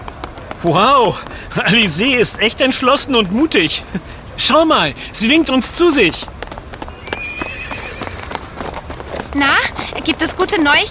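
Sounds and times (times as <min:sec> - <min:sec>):
horses galloping across a square: 0:00.0 - 0:10.9
speech: 0:00.6 - 0:06.4, 0:10.2 - 0:10.9
horse whinnying: 0:06.8 - 0:08.9.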